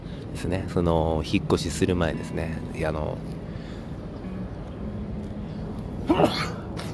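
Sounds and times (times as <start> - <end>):
steady outdoor hiss: 0.0 - 6.9
speech: 0.4 - 3.4, 6.1 - 6.6
person sneezing: 6.0 - 6.7.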